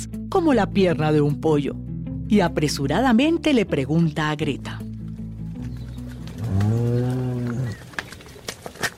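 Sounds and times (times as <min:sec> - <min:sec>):
speech: 0:00.0 - 0:04.8
cow mooing on a large cattle ranch: 0:06.3 - 0:07.9.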